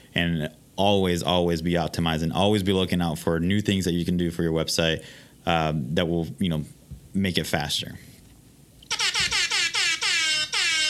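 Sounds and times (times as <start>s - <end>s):
speech: 0.2s - 8.1s
rap air horn blasts: 8.9s - 10.8s.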